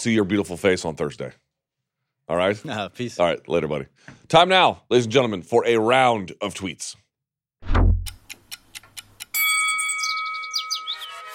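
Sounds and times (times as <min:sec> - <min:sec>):
speech: 0:00.0 - 0:01.5, 0:02.3 - 0:07.0
low thump: 0:07.6 - 0:08.1
ticking clock timer sound effect: 0:08.0 - 0:09.4
loud sustained bell-like ding: 0:09.3 - 0:11.3.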